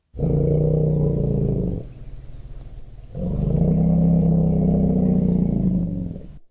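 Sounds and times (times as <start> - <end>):
elephant greeting rumbles: 0.0 - 6.4.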